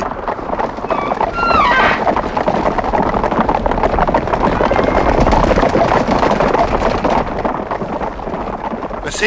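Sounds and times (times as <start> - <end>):
drumming hooves of a large stampeding herd of guanacos: 0.0 - 9.2
high whinny-like cries of guanacos: 0.9 - 2.1.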